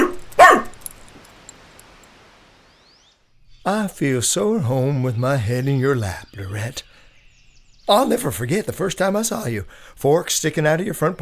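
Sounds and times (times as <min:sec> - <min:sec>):
dog barking: 0:00.0 - 0:00.8
speech: 0:03.7 - 0:07.0, 0:07.9 - 0:11.2.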